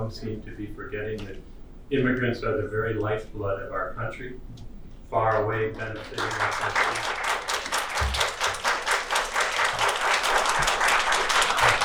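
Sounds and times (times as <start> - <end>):
speech: 0.1 - 7.4
audience applauding in a courtroom: 6.0 - 11.8.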